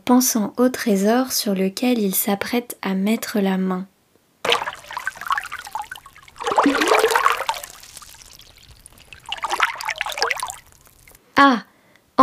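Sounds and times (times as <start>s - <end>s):
speech: 0.1s - 3.9s
water dripping off a cracked wooden sculpture pulled from a lake: 4.5s - 11.2s.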